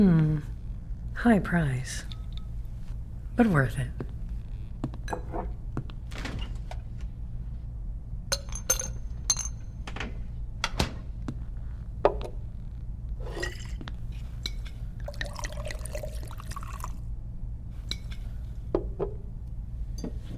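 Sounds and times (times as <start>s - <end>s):
speech: 0.0s - 0.5s, 1.2s - 2.1s, 3.4s - 4.0s
low steady hum: 0.0s - 20.3s
glasses clinking: 8.3s - 9.6s, 14.4s - 16.9s
drink being poured into a glass: 15.0s - 17.0s.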